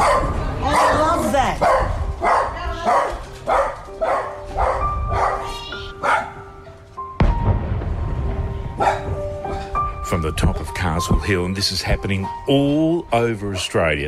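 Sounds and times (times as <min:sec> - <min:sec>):
rumbling background: 0:00.0 - 0:05.9, 0:07.2 - 0:12.8
dog barking upset by gunfire: 0:00.0 - 0:06.5, 0:08.8 - 0:09.2
speech: 0:11.0 - 0:14.0.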